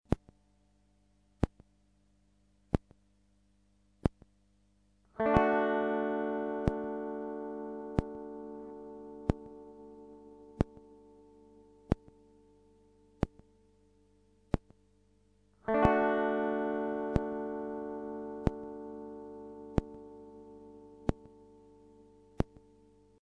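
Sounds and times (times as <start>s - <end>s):
chord: 5.2s - 13.0s, 15.7s - 22.3s.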